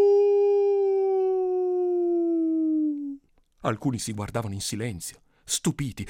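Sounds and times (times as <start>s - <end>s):
wolf howling: 0.0s - 3.2s
speech: 3.6s - 6.0s.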